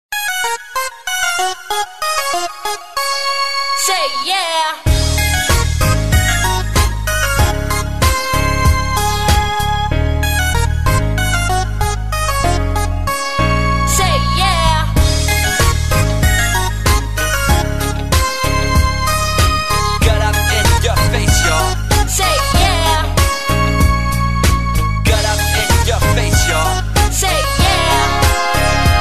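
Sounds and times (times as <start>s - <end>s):
hip hop mobile phone ringtone: 0.2s - 29.0s.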